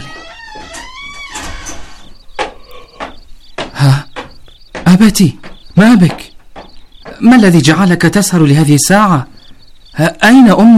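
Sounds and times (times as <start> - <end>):
door sliding and creaking shut with a squealing glide: 0.0 - 3.2
speech: 3.8 - 4.0, 4.9 - 6.2, 7.2 - 9.3, 10.0 - 10.7.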